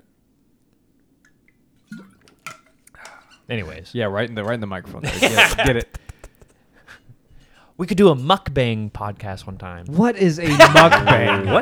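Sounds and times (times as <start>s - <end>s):
person gulping water near the microphone: 1.8s - 3.1s, 5.0s - 6.5s
speech: 3.5s - 6.0s, 7.8s - 11.6s
laughter: 4.9s - 6.4s, 10.4s - 11.6s.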